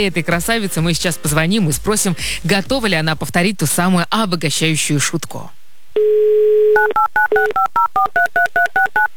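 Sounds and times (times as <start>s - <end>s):
speech: 0.0s - 9.1s
telephone keypad tones beeping as a number is dialed: 6.0s - 9.1s.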